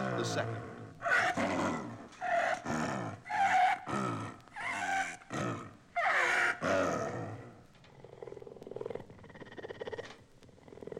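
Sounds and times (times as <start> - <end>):
snow leopard growling: 0.0 - 10.9
speech: 0.2 - 0.8, 1.4 - 1.9
snow leopard rumbling purr-like breathing: 7.9 - 10.9.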